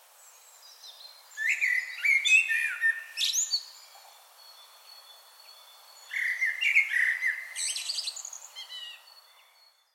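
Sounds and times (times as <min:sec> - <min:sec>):
common blackbird Turdus merula singing: 0:00.6 - 0:09.9.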